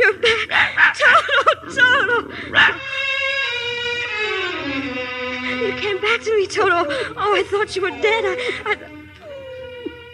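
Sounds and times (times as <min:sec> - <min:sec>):
laughter: 0:00.0 - 0:03.6, 0:05.6 - 0:09.0
small brown and white dog whining: 0:01.2 - 0:04.7, 0:06.2 - 0:10.1
speech: 0:06.5 - 0:08.8.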